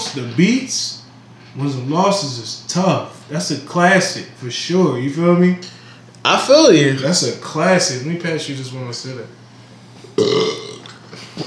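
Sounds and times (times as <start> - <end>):
speech: 0.2 - 1.0, 1.6 - 9.4
loud deep burp: 10.2 - 11.0.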